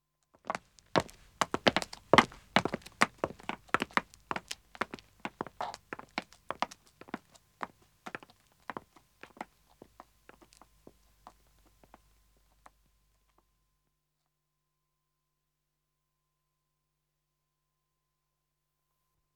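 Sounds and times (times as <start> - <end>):
footsteps of a man and a woman walking on pavement: 0.4 - 12.0.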